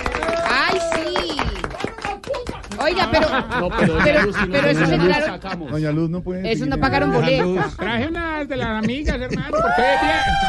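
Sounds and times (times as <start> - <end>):
people whooping: 0.0 - 1.5, 9.5 - 10.4
studio audience clapping: 0.0 - 4.0
laughter: 2.8 - 10.4
speech: 2.9 - 10.4.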